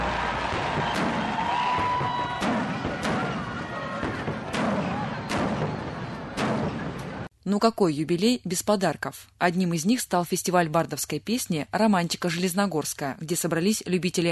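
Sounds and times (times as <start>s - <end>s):
fireworks bursting at a City Day celebration: 0.0s - 7.3s
outdoor crowd noise: 0.0s - 7.3s
speech: 0.8s - 1.2s, 7.5s - 14.3s.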